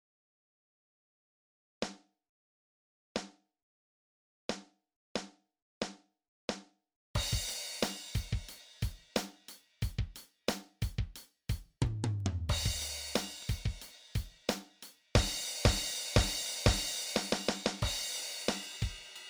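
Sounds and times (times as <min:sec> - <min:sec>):
drum kit playing: 0:07.2 - 0:19.2.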